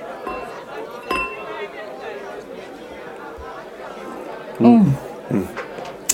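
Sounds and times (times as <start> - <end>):
glasses clinking in a toast: 0.0 - 2.0
murmur of voices and chatter: 0.0 - 6.1.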